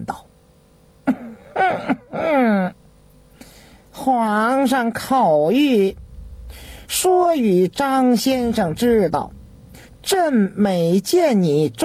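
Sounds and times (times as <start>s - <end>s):
speech: 0.0s - 0.2s, 4.1s - 9.4s, 10.0s - 11.8s
light throat-clearing coughs: 1.1s - 2.7s.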